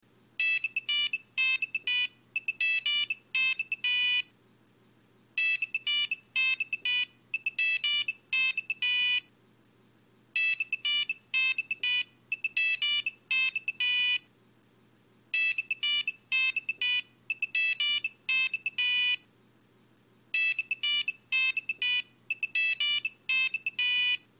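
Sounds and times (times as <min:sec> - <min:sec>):
retro phone ringtone: 0:00.4 - 0:04.3, 0:05.4 - 0:09.3, 0:10.4 - 0:14.3, 0:15.3 - 0:19.2, 0:20.4 - 0:24.3.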